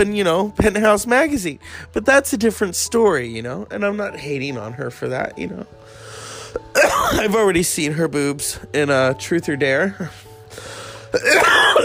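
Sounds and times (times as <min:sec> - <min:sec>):
speech: 0:00.0 - 0:11.8
loud raspy cough: 0:06.7 - 0:07.4, 0:11.2 - 0:11.8.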